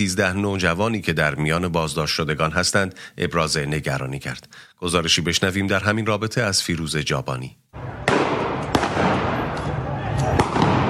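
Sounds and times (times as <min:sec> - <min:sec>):
speech: 0:00.0 - 0:08.0
gunshots fired by security forces at protesters: 0:07.8 - 0:09.6, 0:10.2 - 0:10.8
dense noisy crowd murmuring: 0:07.8 - 0:10.8.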